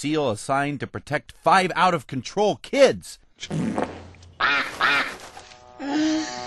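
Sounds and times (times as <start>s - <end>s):
speech: 0.0s - 3.9s
duck quacking: 4.4s - 5.4s.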